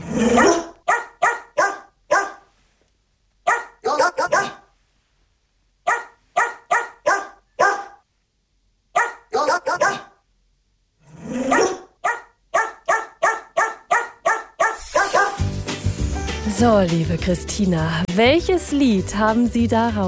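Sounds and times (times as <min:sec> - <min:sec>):
dog barking in quick yaps: 0:00.4 - 0:02.5, 0:03.4 - 0:04.7, 0:05.8 - 0:08.0, 0:08.9 - 0:10.2, 0:11.5 - 0:15.5
speech: 0:16.6 - 0:20.0.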